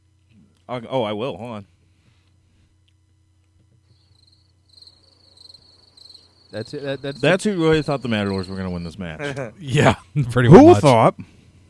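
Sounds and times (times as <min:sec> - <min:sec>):
soft low hum: 0:00.0 - 0:11.6
speech: 0:00.7 - 0:01.7, 0:06.5 - 0:11.4
cricket chirping: 0:03.8 - 0:09.3.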